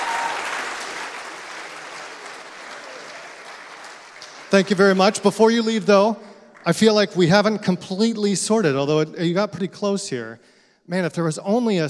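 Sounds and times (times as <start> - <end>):
crowd applauding: 0.0 - 5.8
speech: 4.5 - 11.8.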